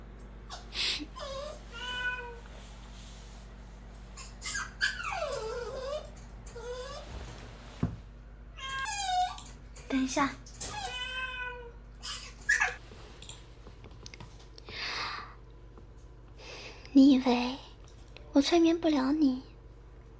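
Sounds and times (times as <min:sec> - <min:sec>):
steady low hum: 0:00.0 - 0:20.1
speech: 0:10.0 - 0:10.4, 0:17.2 - 0:17.6, 0:18.4 - 0:19.5
cat meowing: 0:10.8 - 0:11.7.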